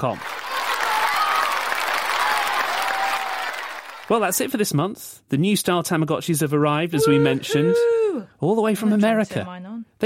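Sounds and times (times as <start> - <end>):
speech: 0.0 - 0.4, 4.1 - 10.0
crowd clapping: 0.0 - 4.5.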